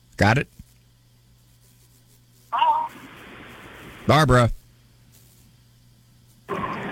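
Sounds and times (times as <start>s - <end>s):
low electrical hum: 0.0s - 6.9s
speech: 0.2s - 0.6s, 4.1s - 4.6s
caller's radio playing over a telephone line in Massachusetts: 2.6s - 4.6s, 6.5s - 6.9s.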